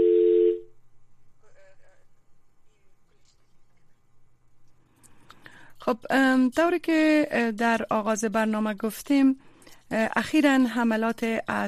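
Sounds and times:
telephone dial tone: 0:00.0 - 0:00.7
speech: 0:05.9 - 0:11.6.

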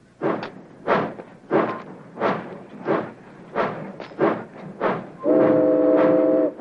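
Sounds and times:
steam freight train pulling away: 0:00.0 - 0:06.5
steam train whistle blast: 0:05.2 - 0:06.5.

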